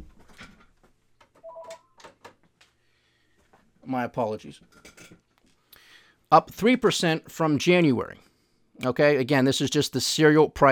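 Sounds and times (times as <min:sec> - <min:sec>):
telephone ringing with electronic two-tone warble: 0:01.4 - 0:02.0
speech: 0:03.9 - 0:04.8, 0:06.3 - 0:10.7.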